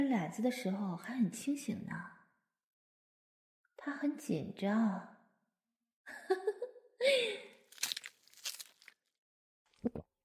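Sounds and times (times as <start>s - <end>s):
speech: 0.0s - 2.2s, 3.8s - 5.1s, 6.1s - 7.5s, 9.8s - 10.1s
crisp crunchy chewing: 7.6s - 9.0s.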